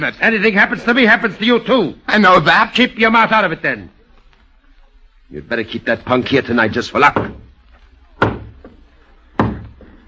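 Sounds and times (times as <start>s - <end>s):
speech: 0.0s - 4.0s, 5.3s - 7.5s
heavy resonant knocks on a door: 7.1s - 7.5s, 8.2s - 8.7s, 9.4s - 9.8s.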